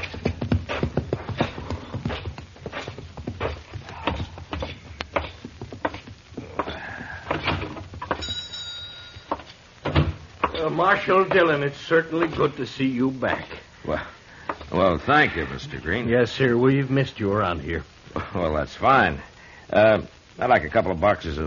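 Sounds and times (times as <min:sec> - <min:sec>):
horse hooves clip-clopping: 0:00.0 - 0:13.6
speech: 0:10.6 - 0:21.4.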